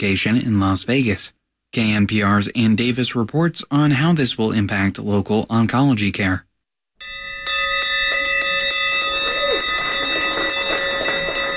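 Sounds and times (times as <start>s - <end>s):
speech: 0.0s - 7.3s
end-of-treatment bell rung in a new cancer treatment facility: 7.0s - 11.5s.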